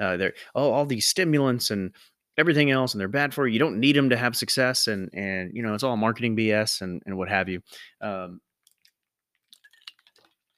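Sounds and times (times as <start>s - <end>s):
speech: 0.0s - 8.4s
person sipping a pre-workout drink: 8.7s - 10.5s
swallowing: 9.5s - 10.4s.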